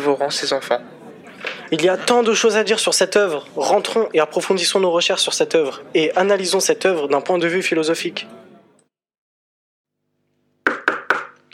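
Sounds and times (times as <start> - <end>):
speech: 0.1 - 1.0, 1.7 - 8.5
sharp knocks on a door: 10.6 - 11.4.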